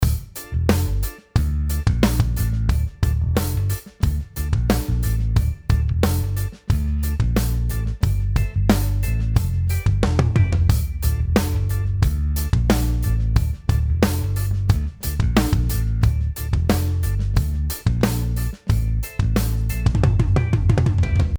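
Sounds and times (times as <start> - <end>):
tom drum fills: 0.0 - 21.3.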